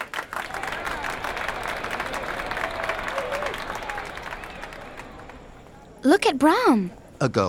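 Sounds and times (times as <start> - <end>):
crowd applauding: 0.0 - 5.9
speech: 6.0 - 7.4.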